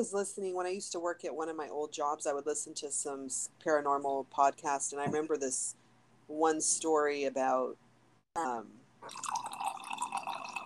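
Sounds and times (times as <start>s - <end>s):
speech: 0.0s - 7.8s, 8.4s - 9.6s
drink pouring into a glass: 9.0s - 10.6s.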